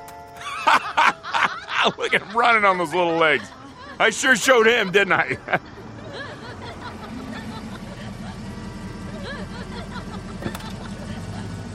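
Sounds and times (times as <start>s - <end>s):
car engine rumbling as it pulls up: 0.0s - 11.7s
person chuckling: 0.4s - 2.6s, 5.0s - 11.7s
speech: 1.8s - 5.8s.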